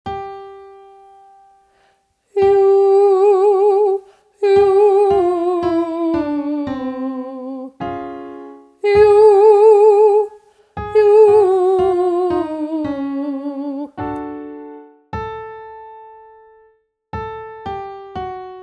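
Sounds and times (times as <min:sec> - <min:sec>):
person singing ascending 5-note scale on yoo as vocal exercise: 0:02.4 - 0:07.7, 0:08.8 - 0:14.0.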